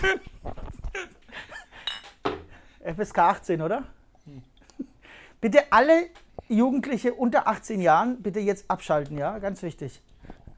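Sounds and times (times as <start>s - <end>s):
speech: 0.0s - 1.5s, 2.8s - 4.5s, 5.4s - 10.5s
glasses clinking in a toast: 1.8s - 2.3s.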